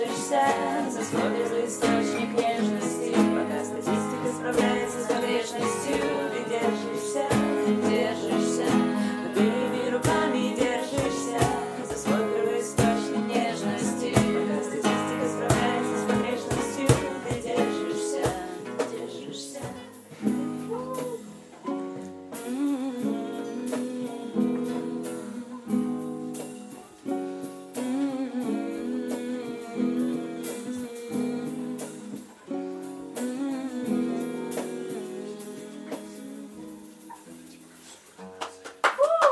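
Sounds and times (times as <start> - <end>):
speech: 0.0 - 2.7
live music from a house concert in the next room: 0.0 - 39.3.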